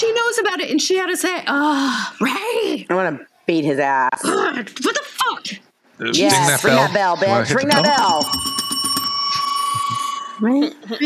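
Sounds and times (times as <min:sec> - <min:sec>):
speech: 0:00.0 - 0:08.6, 0:10.4 - 0:11.0
bell ringing: 0:07.4 - 0:10.6.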